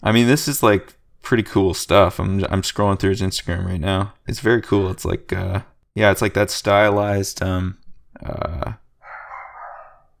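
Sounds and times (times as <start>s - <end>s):
speech: 0.0s - 8.8s
small chihuahua barking: 9.0s - 10.1s.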